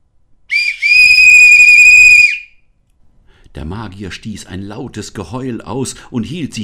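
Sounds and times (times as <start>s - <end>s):
small silver whistle blown hard: 0.5s - 2.7s
speech: 3.6s - 6.6s.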